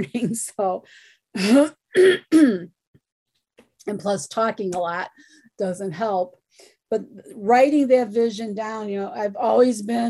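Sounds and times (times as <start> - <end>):
speech: 0.0 - 2.8, 3.8 - 10.0
throat-clearing coughs: 2.0 - 2.7.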